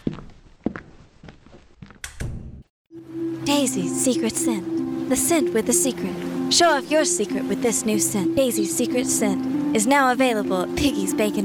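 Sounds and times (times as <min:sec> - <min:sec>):
footsteps on a hard floor: 0:00.0 - 0:02.0
speech: 0:03.5 - 0:11.4.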